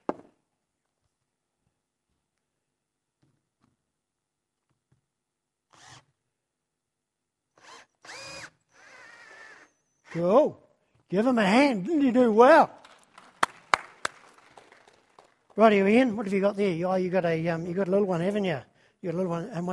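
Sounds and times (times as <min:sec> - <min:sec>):
power drill whirring: 0:05.7 - 0:06.1, 0:07.5 - 0:10.3
speech: 0:10.2 - 0:12.8, 0:15.6 - 0:19.7.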